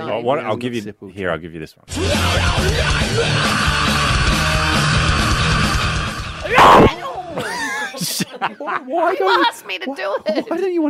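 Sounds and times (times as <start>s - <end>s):
speech: 0.1s - 4.0s, 8.4s - 10.8s
heavy busy music: 1.9s - 6.9s
man letting out a loud raw primal scream: 1.9s - 7.0s
laughter: 7.0s - 10.6s.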